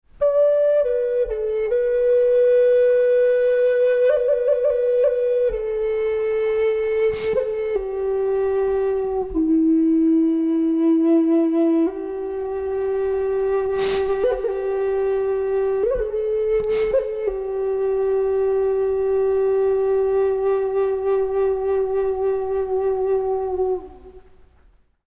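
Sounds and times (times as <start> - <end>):
Indian flute playing a cyclic phrase: 0.2 - 24.4.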